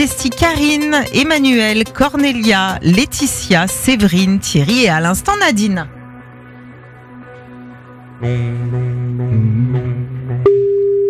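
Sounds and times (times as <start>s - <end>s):
speech: 0.0s - 6.0s, 8.2s - 9.9s
telephone ringing on an outgoing call to a line near Lens, France: 10.5s - 11.0s.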